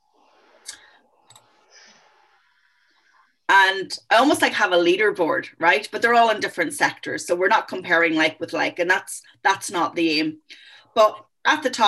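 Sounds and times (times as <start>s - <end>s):
computer mouse clicks: 0.7s - 1.5s
speech: 3.6s - 11.8s.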